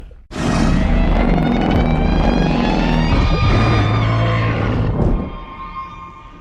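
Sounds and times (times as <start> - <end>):
sonar blast: 0.3 - 6.3.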